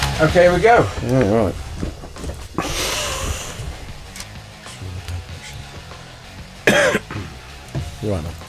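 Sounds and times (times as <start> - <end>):
speech: 0.2 - 2.0, 8.0 - 8.4
person clearing throat: 6.7 - 7.4
person coughing: 6.7 - 7.4.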